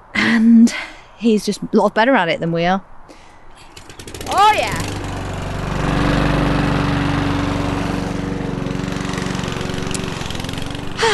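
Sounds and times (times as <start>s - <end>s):
speech: 0.4s - 3.2s
lawn mower engine running: 3.6s - 11.1s.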